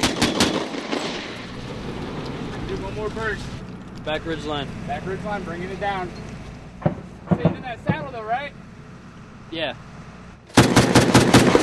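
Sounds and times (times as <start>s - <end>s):
soldiers firing a barrage of gunshots into a hillside: 0.0s - 2.1s, 6.8s - 7.7s, 10.5s - 11.6s
low rumbling wash of noise: 0.6s - 11.5s
speech: 3.0s - 8.6s, 9.5s - 9.9s.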